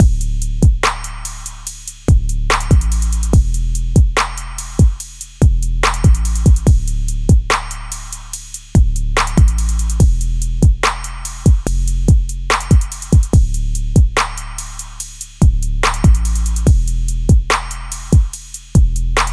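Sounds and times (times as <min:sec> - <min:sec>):
trap bass: 0:00.0 - 0:19.3.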